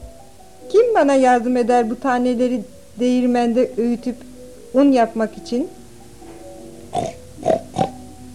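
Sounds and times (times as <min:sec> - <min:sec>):
speech: 0:00.7 - 0:05.8, 0:06.9 - 0:07.2
short nasal pig grunts: 0:06.9 - 0:08.0.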